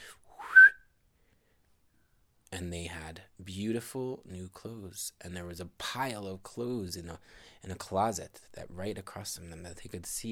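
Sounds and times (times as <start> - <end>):
human whistling: 0.3 - 0.9
speech: 2.5 - 10.3.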